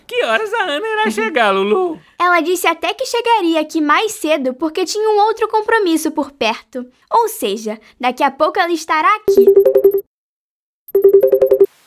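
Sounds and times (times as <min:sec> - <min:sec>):
speech: 0:00.1 - 0:09.9
electronic telephone ringtone trilling: 0:09.3 - 0:10.0, 0:10.9 - 0:11.7.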